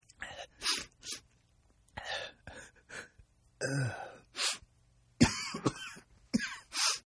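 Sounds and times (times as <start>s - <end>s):
man with a cold sniffling: 0.3s - 1.3s, 2.0s - 4.7s, 6.6s - 7.0s.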